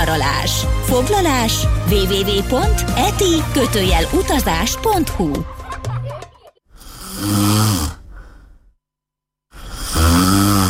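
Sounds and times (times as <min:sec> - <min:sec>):
speech: 0:00.0 - 0:05.6
laughter: 0:05.1 - 0:06.6
loud rumbling snoring: 0:06.8 - 0:08.6, 0:09.5 - 0:10.6.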